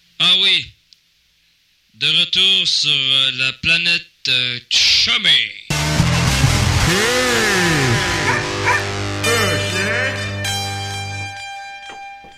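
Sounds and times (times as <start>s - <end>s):
speech: 0.3s - 0.7s, 2.0s - 5.6s, 6.9s - 7.4s
steady sustained tone: 6.0s - 12.3s
dog barking and yowling: 7.9s - 9.0s.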